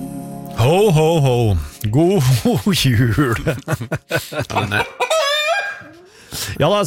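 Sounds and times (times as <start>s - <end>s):
speech: 0.6s - 5.0s, 6.4s - 6.8s
laughter: 2.3s - 5.1s
hen clucking and cackling: 4.4s - 6.1s.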